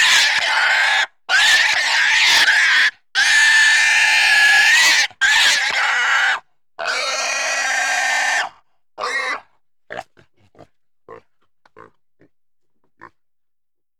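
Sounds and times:
pig squealing: 0.0s - 10.0s
pig grunting: 6.8s - 12.3s.

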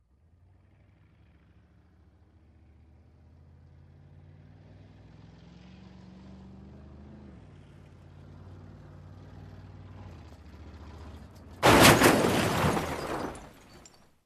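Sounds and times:
approaching car crash: 11.0s - 14.0s.

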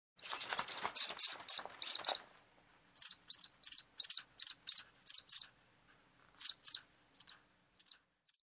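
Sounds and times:
chicks chirping: 0.2s - 2.3s, 2.9s - 5.6s, 6.3s - 8.4s.

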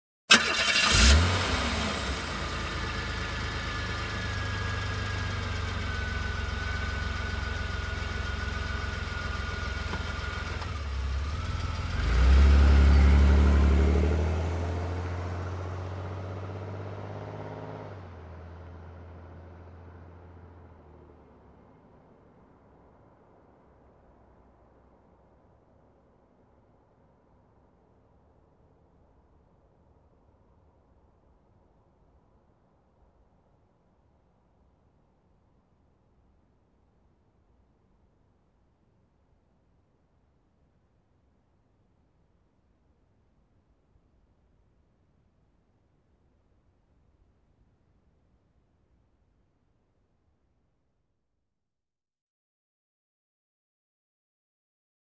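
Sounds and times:
car engine starting: 0.3s - 21.3s.

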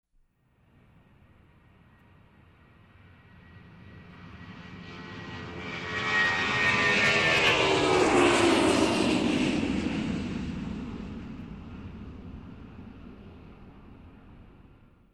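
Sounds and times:
aircraft on runway lifting off: 2.9s - 15.0s.

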